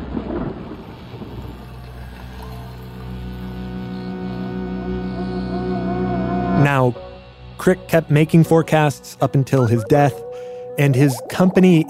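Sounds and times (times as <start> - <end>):
thunderclap: 0.0 - 1.5
droning tonal undertone: 1.5 - 11.8
speech: 7.6 - 10.2, 10.8 - 11.8.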